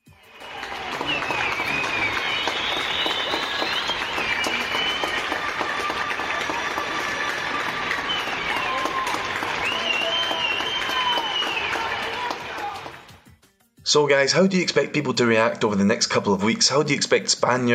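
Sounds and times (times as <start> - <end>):
whistles: 0.0 - 12.3
voices cheering: 0.0 - 13.1
large crowd applauding healthcare workers at night: 0.0 - 13.3
speech: 13.9 - 17.7.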